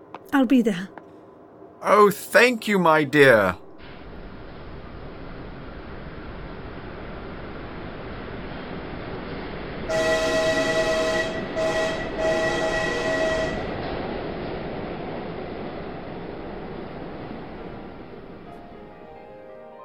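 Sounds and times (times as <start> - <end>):
train pulling out of a station with rolling rumble: 0.0 - 19.5
speech: 0.3 - 1.0, 1.8 - 3.6
loud train whistle: 9.9 - 13.8.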